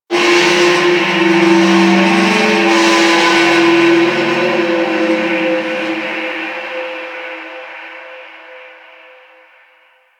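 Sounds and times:
distant metal bending in shipyards: 0.3s - 7.6s.

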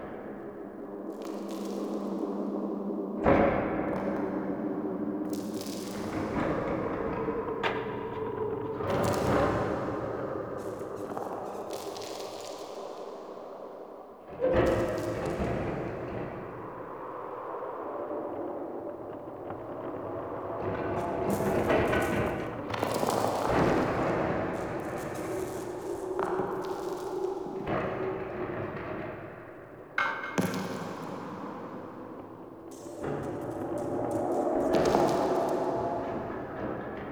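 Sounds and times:
cave mine ambience: 0.0s - 3.2s, 4.1s - 37.0s.

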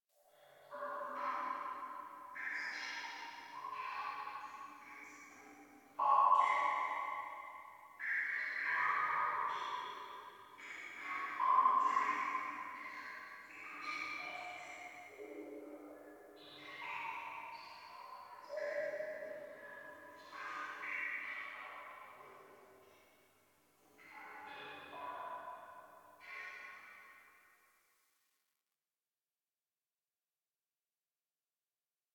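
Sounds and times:
water drips ambience: 1.1s - 15.2s, 16.4s - 23.0s.

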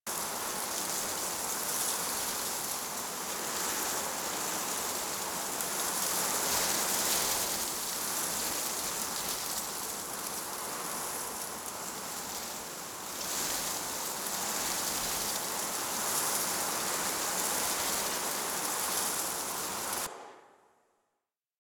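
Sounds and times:
wind in trees: 0.1s - 20.2s.

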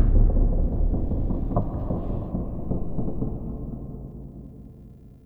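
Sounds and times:
low root creaks in a cave: 0.2s - 4.1s.

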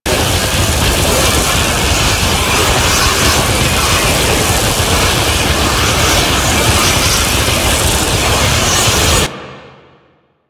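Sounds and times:
tornado wind loop: 0.0s - 9.3s.

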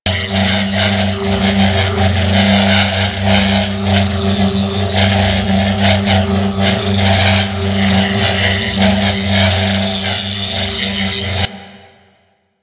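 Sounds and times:
orb prop malfunction spin loop: 0.1s - 11.5s.

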